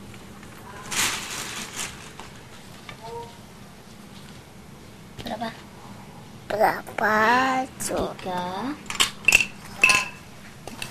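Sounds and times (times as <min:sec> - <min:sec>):
speech: 0:06.5 - 0:08.9
dishes clinking while being washed: 0:08.9 - 0:10.8.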